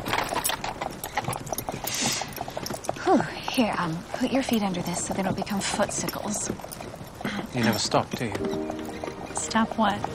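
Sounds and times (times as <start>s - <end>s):
horse hooves clip-clopping: 0.0s - 10.1s
horse-drawn carriage rattling and rolling: 0.0s - 10.1s
speech: 3.1s - 6.9s, 7.5s - 8.8s, 9.4s - 10.1s.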